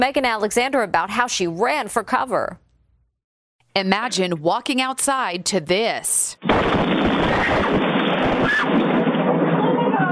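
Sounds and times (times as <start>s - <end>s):
speech: 0.0s - 2.6s, 3.7s - 8.8s
lightning bolt striking a nearby tree: 6.4s - 10.1s.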